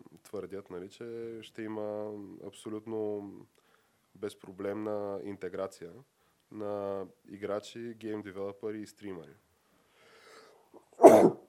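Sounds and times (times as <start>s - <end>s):
speech: 0.3s - 3.6s, 4.2s - 9.4s
sneeze: 10.9s - 11.4s.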